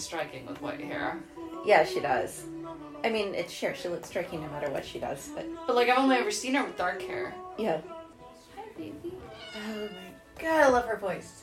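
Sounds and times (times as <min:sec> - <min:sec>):
speech: 0:00.0 - 0:08.0, 0:08.8 - 0:11.4
cat meowing: 0:09.2 - 0:10.2.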